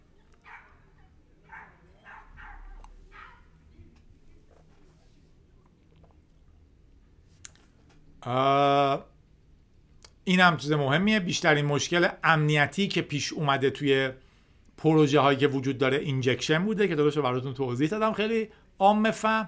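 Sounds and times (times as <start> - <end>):
dog barking outside at night: 0.4 - 3.6
speech: 8.2 - 9.0, 10.3 - 14.2, 14.8 - 19.4.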